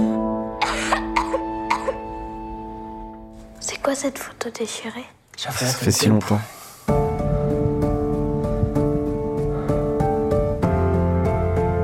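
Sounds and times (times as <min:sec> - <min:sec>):
harsh wheezy coughs: 0:00.6 - 0:02.1
speech: 0:03.9 - 0:07.1
steady low hum: 0:06.9 - 0:11.8.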